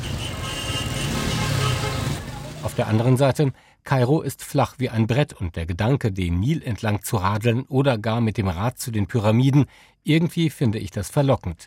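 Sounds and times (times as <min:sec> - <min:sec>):
busy city street traffic: 0:00.0 - 0:03.3
speech: 0:02.8 - 0:11.6.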